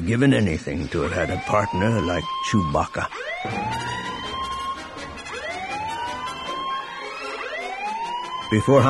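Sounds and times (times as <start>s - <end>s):
speech: 0.0s - 4.2s, 8.5s - 8.8s
sirens wailing: 0.7s - 8.8s.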